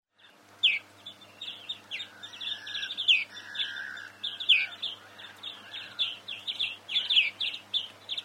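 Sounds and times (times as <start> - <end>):
European greenfinch Chloris chloris chirping twitter: 0.2 - 8.2.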